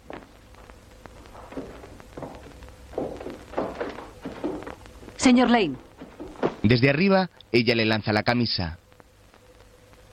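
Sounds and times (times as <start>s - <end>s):
footsteps of a man walking down stairs: 0.0s - 6.8s
speech: 5.3s - 5.9s, 6.7s - 8.8s.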